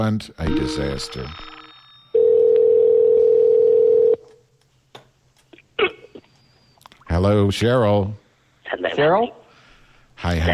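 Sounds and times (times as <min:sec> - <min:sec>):
speech: 0:00.0 - 0:01.5, 0:07.2 - 0:09.4, 0:10.2 - 0:10.5
telephone dial tone while placing a call: 0:01.3 - 0:04.2.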